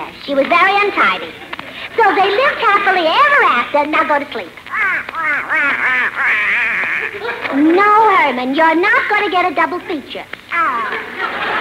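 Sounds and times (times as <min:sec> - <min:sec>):
speech: 0:00.1 - 0:11.4
laughter: 0:01.0 - 0:03.4, 0:04.8 - 0:07.8, 0:09.2 - 0:11.5
duck quacking: 0:04.7 - 0:07.5.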